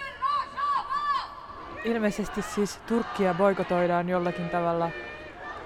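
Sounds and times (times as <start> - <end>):
protest crowd shouting rhythmic protest chants: 0.3 - 5.6
speech: 1.8 - 5.1.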